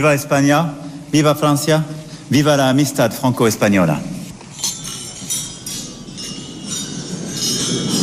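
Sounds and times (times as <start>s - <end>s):
speech: 0.0s - 4.1s
glasses clinking during a toast: 4.4s - 8.0s.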